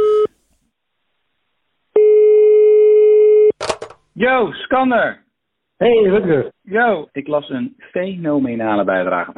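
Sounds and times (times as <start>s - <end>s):
electronic ringback tone of an outgoing phone call: 0.0s - 0.3s, 2.0s - 3.5s
speech: 4.2s - 5.2s, 5.8s - 9.3s.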